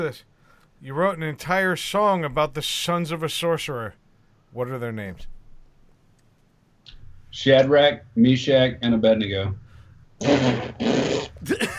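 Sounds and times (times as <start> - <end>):
speech: 0.0 - 5.3, 7.3 - 9.6, 10.2 - 11.7
woman blowing raspberries with her lips: 10.2 - 11.4
brief vocal noise: 10.2 - 11.6.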